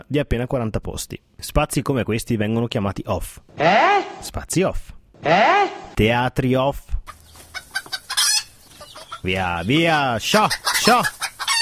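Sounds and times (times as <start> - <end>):
speech: 0.0 - 7.0, 9.2 - 11.2
chicken squawking: 3.5 - 4.3, 5.2 - 6.0, 7.1 - 11.6
chickens clucking: 7.1 - 11.6.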